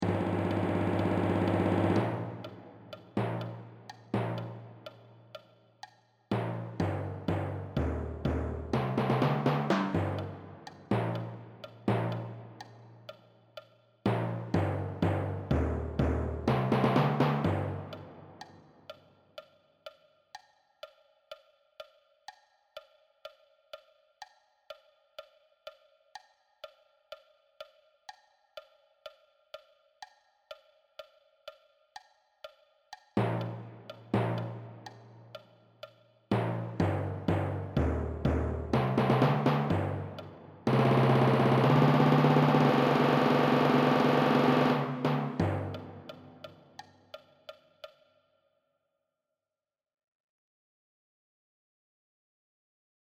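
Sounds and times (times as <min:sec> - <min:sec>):
timpani: 0:00.0 - 0:05.1, 0:06.3 - 0:12.8, 0:14.1 - 0:18.5, 0:33.2 - 0:35.2, 0:36.3 - 0:46.8.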